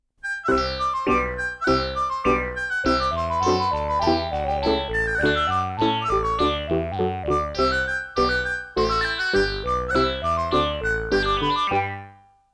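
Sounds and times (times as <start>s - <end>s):
bright baroque music: 0.2s - 12.5s.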